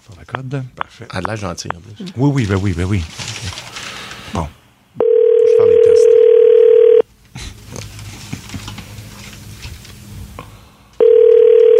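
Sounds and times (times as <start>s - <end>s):
speech: 0.1s - 3.6s, 4.3s - 4.6s
outgoing phone call ringing tone: 5.0s - 7.0s, 11.0s - 11.7s.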